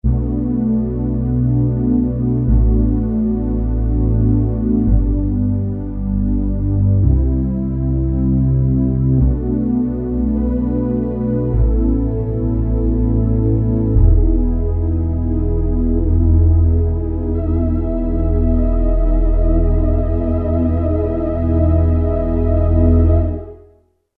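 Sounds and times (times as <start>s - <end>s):
Kurzweil K2000 analog synthesizer patch: 0.0s - 23.8s.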